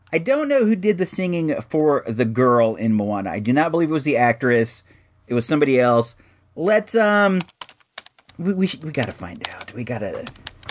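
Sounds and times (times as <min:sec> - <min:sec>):
speech: 0:00.1 - 0:07.6, 0:08.4 - 0:10.5
crisp computer keyboard keystrokes: 0:07.4 - 0:10.6.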